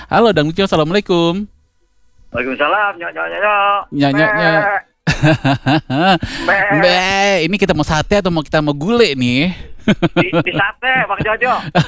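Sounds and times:
speech: 0.1 - 1.5, 2.3 - 11.8
laughter: 2.4 - 7.3, 9.0 - 11.8
goat bleating: 4.1 - 4.8.

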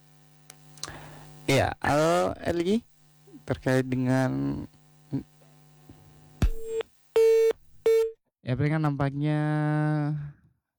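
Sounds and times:
speech: 1.5 - 2.9, 3.5 - 5.3, 8.4 - 10.4
busy tone on a dropped telephone line: 6.5 - 8.1.

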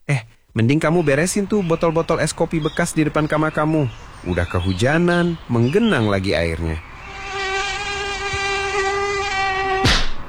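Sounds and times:
speech: 0.1 - 6.9
Aedes aegypti mosquito buzzing: 6.9 - 10.2.

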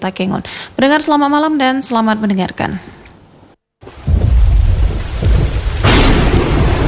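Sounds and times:
speech: 0.0 - 3.0
deep rumbling: 3.8 - 6.8
heavy rain pouring in Aceh Tengah: 3.8 - 6.8.

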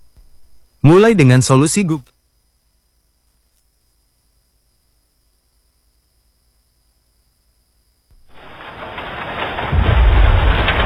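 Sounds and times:
speech: 0.8 - 2.2
steady rain: 8.1 - 10.8
deep rumble of thunder: 8.2 - 10.8.

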